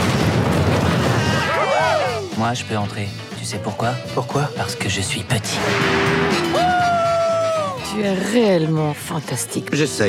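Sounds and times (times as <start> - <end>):
loud rumbling explosion: 0.0 - 1.5, 5.5 - 6.6
roaring burst of fire: 0.0 - 2.4, 3.5 - 7.8
speech: 2.4 - 6.4, 7.9 - 10.0.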